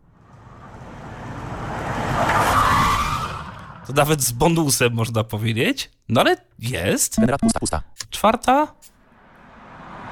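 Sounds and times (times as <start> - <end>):
approaching car engine roaring: 0.1 - 3.9, 9.0 - 10.1
car tyres squealing skid: 0.2 - 4.2
speech: 3.9 - 8.9.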